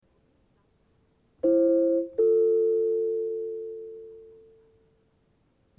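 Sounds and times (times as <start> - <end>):
recorder playing: 1.4 - 4.6.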